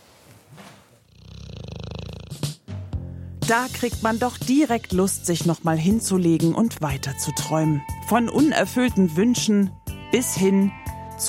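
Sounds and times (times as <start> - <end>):
dog snoring while sleeping in its basket: 0.6 - 2.7
speech: 3.5 - 11.2.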